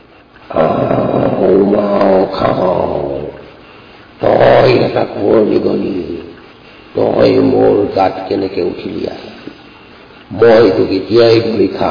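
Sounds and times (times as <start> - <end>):
lion growling: 0.5 - 3.3
speech: 1.4 - 2.9, 5.0 - 6.1, 7.0 - 9.3, 10.3 - 11.9.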